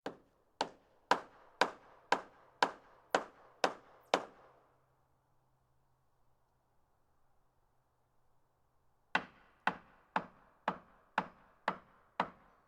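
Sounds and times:
hammering into wood: 0.0s - 4.6s, 9.2s - 12.6s.

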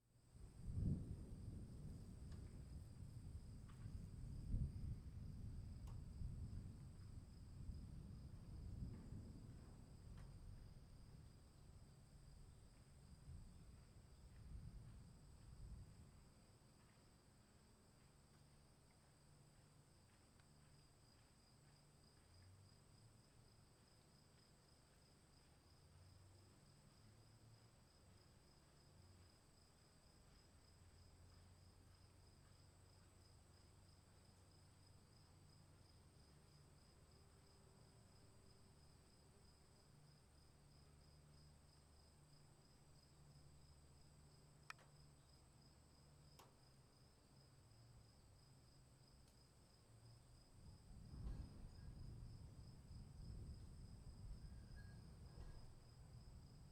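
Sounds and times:
afternoon storm: 0.4s - 16.3s, 50.5s - 56.6s.

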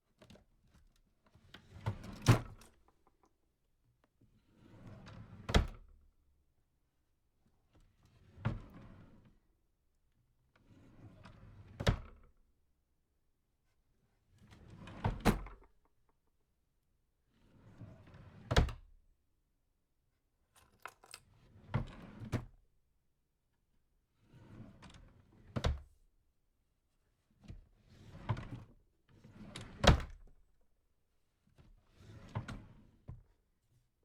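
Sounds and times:
small drawer opening and closing: 0.1s - 3.1s, 4.6s - 5.9s, 8.0s - 9.4s, 10.6s - 12.3s, 14.4s - 15.8s, 17.4s - 18.9s, 20.6s - 22.6s, 24.2s - 25.9s, 27.4s - 30.4s, 31.5s - 33.4s.

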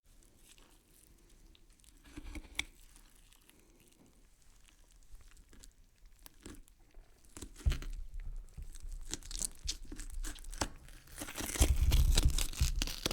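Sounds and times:
fresh meat being cut: 9.2s - 13.1s.

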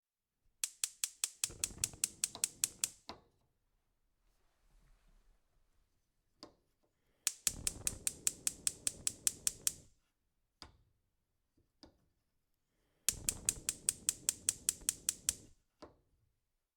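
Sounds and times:
gas stove lighter: 0.6s - 3.0s, 7.3s - 9.8s, 13.1s - 15.5s.

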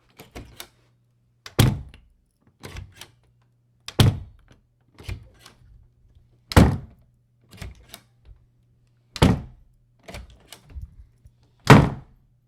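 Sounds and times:
hollow wood door: 9.2s - 9.6s, 11.7s - 12.1s.

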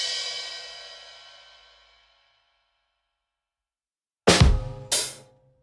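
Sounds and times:
punchline drum: 4.3s - 5.2s.

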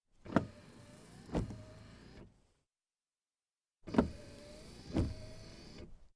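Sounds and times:
SUV windshield wiper: 1.2s - 1.9s, 3.9s - 5.8s.

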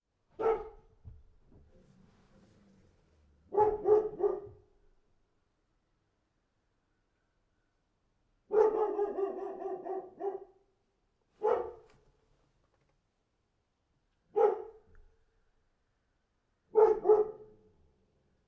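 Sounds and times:
dog barking: 0.4s - 1.0s, 3.5s - 4.7s, 8.5s - 10.6s, 11.4s - 11.9s, 14.3s - 14.9s, 16.7s - 17.7s.

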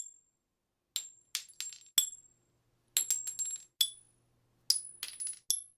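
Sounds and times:
handgun shell casings falling: 1.0s - 2.2s, 3.0s - 4.0s, 4.7s - 5.7s.

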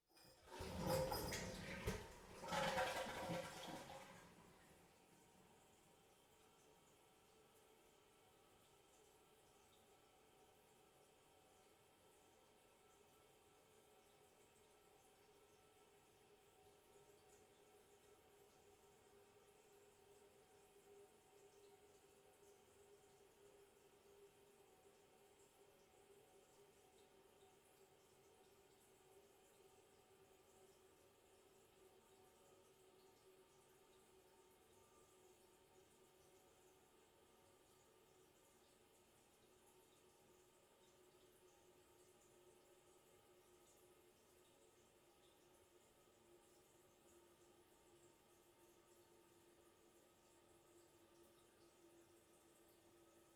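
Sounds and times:
toilet flushing: 0.2s - 5.3s.

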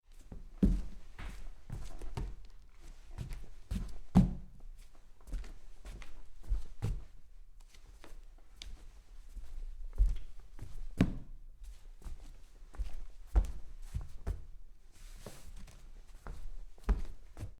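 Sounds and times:
footsteps in socks on wood: 0.1s - 7.1s, 7.9s - 14.5s.

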